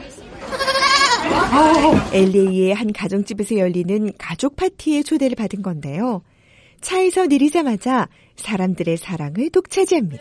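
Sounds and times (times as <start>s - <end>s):
pygmy goat kids bleating: 0.5s - 1.8s
speech: 1.5s - 10.1s.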